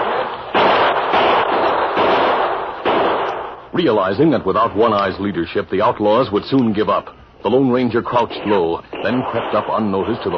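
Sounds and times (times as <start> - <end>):
gunfire in a shootout from a building's back windows: 0.0 - 3.7, 8.2 - 10.3
speech: 3.8 - 10.3.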